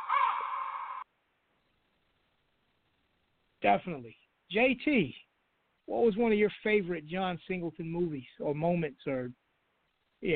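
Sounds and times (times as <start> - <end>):
harsh raspy raven call: 0.0 - 1.0
speech: 3.6 - 5.2, 5.9 - 9.4, 10.2 - 10.3.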